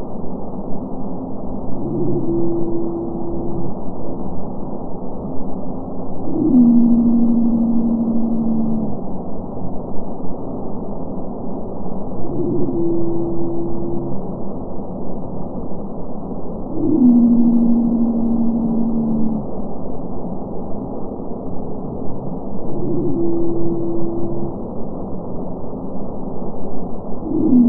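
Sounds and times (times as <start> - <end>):
continuous low background noise: 0.0 - 27.6
Madagascan pygmy blue whale song sped up ten times: 1.5 - 4.0, 6.2 - 9.1, 12.1 - 14.5, 16.6 - 19.6, 22.3 - 25.0, 27.1 - 27.6.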